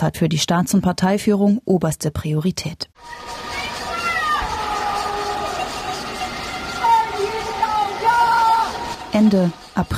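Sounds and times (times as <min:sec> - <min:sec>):
speech: 0:00.0 - 0:03.5, 0:09.1 - 0:09.9
people shouting and wailing from high-rise windows in Shanghai China: 0:03.0 - 0:09.8.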